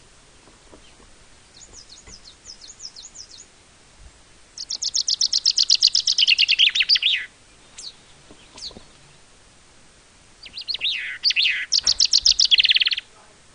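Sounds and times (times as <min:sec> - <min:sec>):
common chaffinch Fringilla coelebs song: 0:00.6 - 0:03.6, 0:04.6 - 0:09.4, 0:10.4 - 0:13.1.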